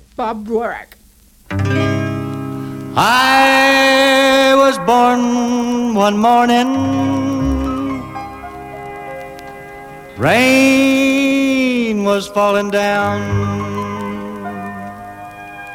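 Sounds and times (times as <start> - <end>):
speech: 0.2 - 1.0, 3.0 - 7.3, 10.2 - 13.8
steady instrumental backing: 1.4 - 15.7
solo voice singing a recorded song cover: 3.0 - 8.3, 10.2 - 15.0.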